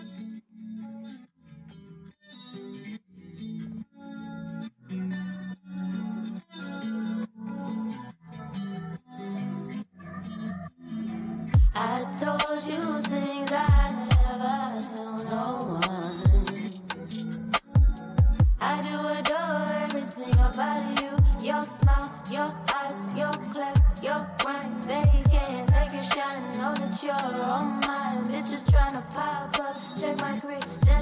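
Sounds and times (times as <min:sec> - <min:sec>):
punchy drums: 0:11.6 - 0:18.7, 0:20.2 - 0:26.4, 0:27.8 - 0:31.0
pulsing effect-heavy synth chords: 0:11.6 - 0:31.0
speech: 0:12.0 - 0:16.3.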